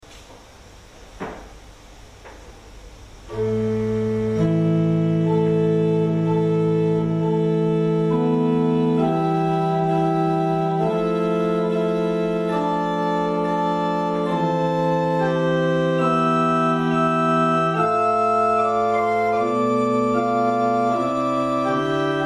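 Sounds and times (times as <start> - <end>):
chimney flute: 3.3 - 22.2.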